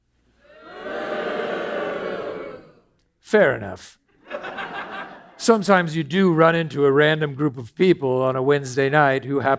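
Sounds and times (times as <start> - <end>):
live audience booing: 0.4 - 2.8
speech: 3.3 - 4.0, 5.4 - 9.5
laughter: 4.2 - 5.4.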